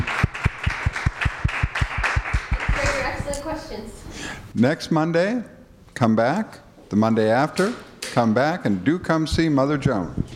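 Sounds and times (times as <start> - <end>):
audience applauding after a presentation: 0.0 - 3.0
speech: 3.7 - 10.2.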